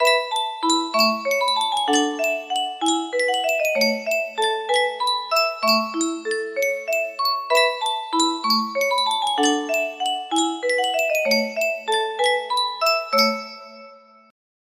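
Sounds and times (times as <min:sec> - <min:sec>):
music box playing a carousel waltz: 0:00.0 - 0:14.3.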